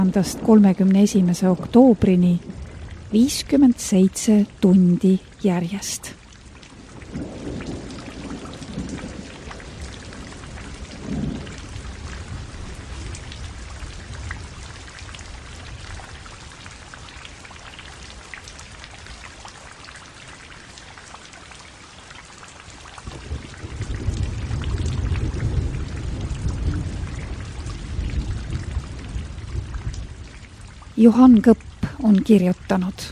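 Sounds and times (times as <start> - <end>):
speech: 0.0 - 2.5, 3.1 - 6.2, 31.0 - 33.1
deep thunder rumbling: 0.0 - 4.7, 6.7 - 14.7, 23.0 - 33.1
heavy rain pouring: 0.0 - 33.1.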